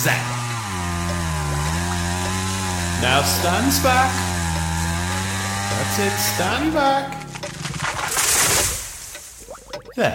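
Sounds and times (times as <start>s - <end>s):
speech: 0.0s - 0.4s, 3.0s - 4.3s, 5.8s - 7.2s, 10.0s - 10.1s
chainsaw engine running: 0.0s - 9.4s.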